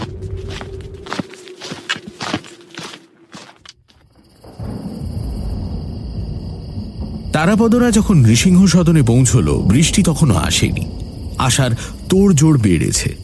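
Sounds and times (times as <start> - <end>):
footsteps of people walking fast along a road: 0.0 - 4.0
speech: 7.4 - 13.2.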